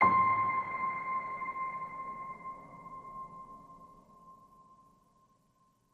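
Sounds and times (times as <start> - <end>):
piano note C: 0.0 - 3.8.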